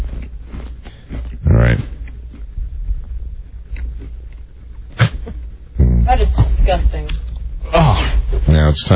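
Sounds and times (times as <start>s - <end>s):
wet chewing and crunching of salty food: 0.0s - 5.0s
low rumble: 0.0s - 8.9s
speech: 8.8s - 8.9s.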